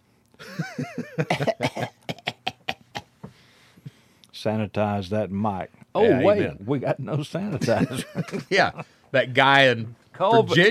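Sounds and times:
laughter: 0.4 - 3.0, 7.5 - 8.9
speech: 0.6 - 1.9, 4.4 - 10.6
person coughing: 1.1 - 3.0.

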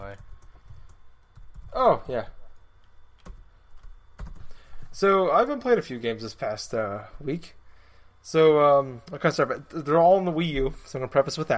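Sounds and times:
typing a message on a computer keyboard: 0.0 - 1.8, 3.2 - 4.5
speech: 1.8 - 2.4, 5.0 - 7.6, 8.2 - 11.5.

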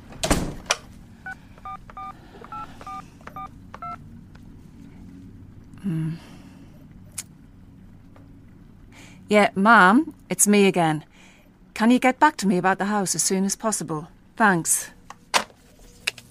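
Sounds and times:
door pulled shut with a sharp thud: 0.1 - 0.8
telephone keypad beeps: 1.6 - 4.0
speech: 5.8 - 6.4, 9.3 - 11.1, 11.8 - 15.0.

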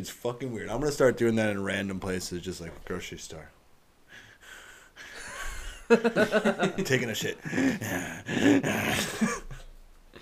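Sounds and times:
speech: 0.0 - 3.6, 5.9 - 9.5
voice imitating a man's heavy workout breathing: 4.0 - 5.9, 7.4 - 10.1
laughter: 5.1 - 9.6.

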